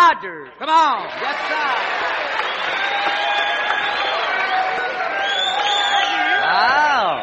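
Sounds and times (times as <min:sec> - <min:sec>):
speech: 0:00.1 - 0:01.9
large crowd applauding: 0:00.9 - 0:07.2
shrill whistles swooping up and down: 0:02.3 - 0:07.2.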